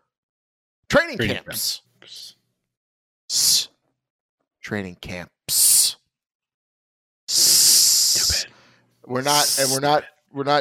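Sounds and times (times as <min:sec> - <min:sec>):
speech: 0:00.9 - 0:02.4, 0:03.3 - 0:03.7, 0:04.7 - 0:05.7, 0:09.1 - 0:10.5
person making a loud sustained snake-like hiss: 0:03.3 - 0:03.7, 0:07.3 - 0:08.5, 0:09.4 - 0:09.8.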